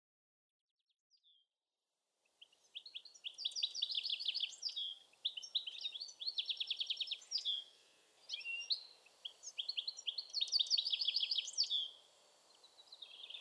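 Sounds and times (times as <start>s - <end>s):
European goldfinch twittering with rapid liquid tinkling notes: 2.8s - 13.3s.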